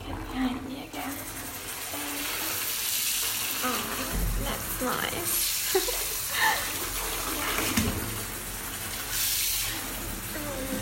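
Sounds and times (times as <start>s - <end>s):
tap pouring water into a bathtub: 0.0s - 10.8s
speech: 4.8s - 5.9s.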